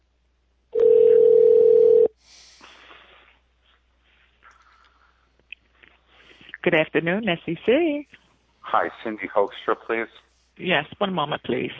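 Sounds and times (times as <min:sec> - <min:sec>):
telephone dial tone: 0:00.8 - 0:02.1
speech: 0:06.6 - 0:11.7.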